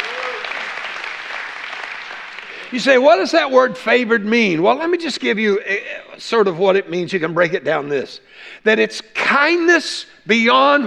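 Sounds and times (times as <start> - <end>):
crowd applauding: 0.0 - 3.3
speech: 2.7 - 10.8.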